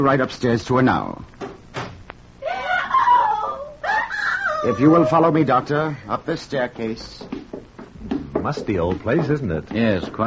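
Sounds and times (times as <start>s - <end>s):
speech: 0.0s - 1.4s, 4.6s - 7.3s, 8.4s - 10.2s
woman screaming in a high-pitched cry: 2.4s - 5.3s.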